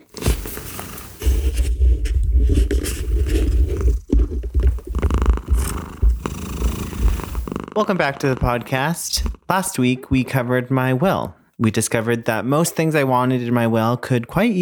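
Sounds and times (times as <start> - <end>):
cat snoring: 0.0 - 9.4
speech: 7.8 - 14.6.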